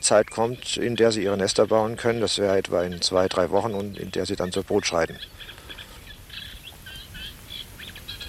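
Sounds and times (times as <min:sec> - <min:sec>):
speech: 0:00.0 - 0:05.6
several birds singing in their breeding territories: 0:00.0 - 0:08.2.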